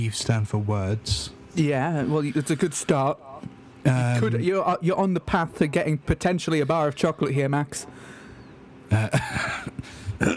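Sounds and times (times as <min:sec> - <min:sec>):
speech: 0:00.0 - 0:08.2, 0:08.9 - 0:10.3
person coughing harshly: 0:08.9 - 0:10.3.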